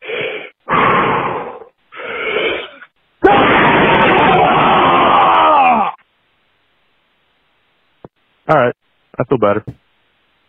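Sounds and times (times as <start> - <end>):
harsh vocal bursts: 0.0 - 6.0
person screaming: 0.7 - 6.0
speech: 8.5 - 9.8.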